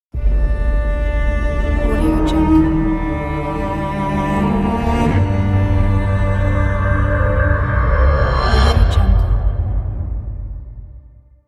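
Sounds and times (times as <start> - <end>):
cello logo: 0.1 - 11.2.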